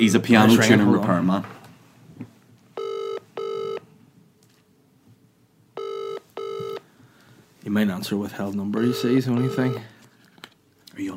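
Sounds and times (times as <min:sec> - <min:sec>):
speech: 0:00.0 - 0:01.6, 0:07.7 - 0:09.9, 0:11.0 - 0:11.1
quiet noise: 0:00.0 - 0:11.1
phone ringback tone from an outgoing call: 0:02.8 - 0:03.8, 0:05.8 - 0:06.8, 0:08.8 - 0:09.9.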